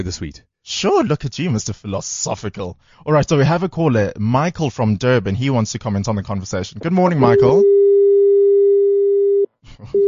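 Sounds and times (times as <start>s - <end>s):
speech: 0.0s - 7.8s, 9.8s - 10.0s
telephone busy signal after a caller's line drops: 7.2s - 10.0s.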